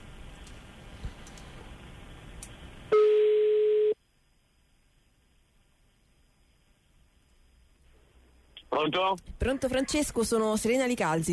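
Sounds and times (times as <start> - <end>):
faint noise: 0.0 - 11.3
telephone call tone while a call is being placed: 2.9 - 4.0
speech: 8.8 - 11.3.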